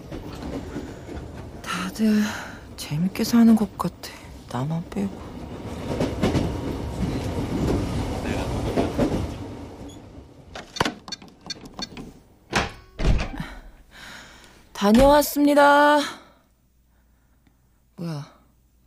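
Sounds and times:
subway train rumbling along the rails: 0.0s - 10.6s
speech: 1.8s - 5.3s, 14.8s - 16.2s
sharp loud clunks and thumps from the subway carriage: 10.6s - 13.5s.

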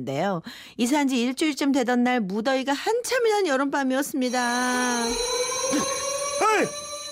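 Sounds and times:
speech: 0.0s - 6.8s
fire alarm ringing in a newly built residential villa: 4.2s - 7.1s.

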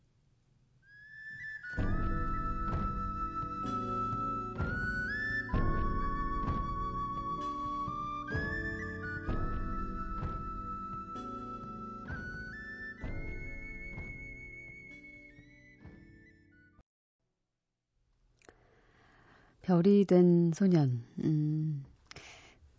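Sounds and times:
gentle instrumental theme music from a Japanese film: 1.4s - 16.8s
speech: 19.7s - 21.6s.

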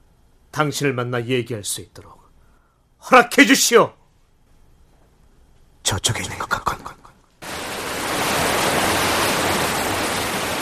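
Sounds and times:
speech: 0.6s - 2.2s, 3.0s - 4.0s, 5.8s - 7.0s
water rushing down an artificial waterfall at a castle: 7.4s - 10.6s.

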